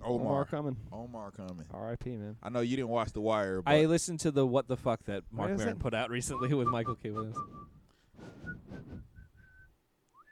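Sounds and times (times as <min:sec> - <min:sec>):
speech: 0:00.1 - 0:08.4
person whistling a tune: 0:06.4 - 0:10.3.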